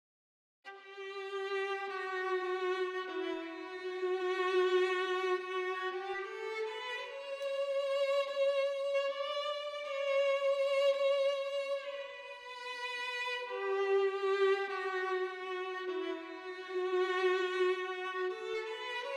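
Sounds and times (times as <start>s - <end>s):
violin through a plug-in switched off: 0.7s - 19.1s.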